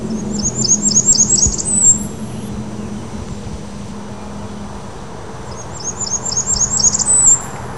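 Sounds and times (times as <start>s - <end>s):
Blackburnian warbler high thin song ending in an upward sweep: 0.0s - 3.2s, 5.5s - 7.7s
low rumbling background noise: 0.0s - 7.7s.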